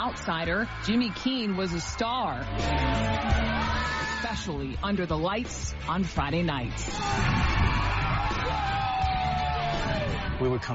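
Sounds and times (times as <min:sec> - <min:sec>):
large stadium crowd roaring at football game: 0:00.0 - 0:04.5, 0:06.9 - 0:10.7
speech: 0:00.0 - 0:08.8, 0:09.8 - 0:10.7.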